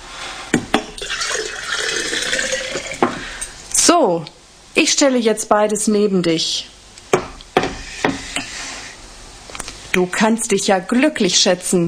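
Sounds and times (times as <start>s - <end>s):
warm drinking water being poured out: 0.8s - 3.2s
speech: 4.0s - 6.7s, 10.0s - 11.8s.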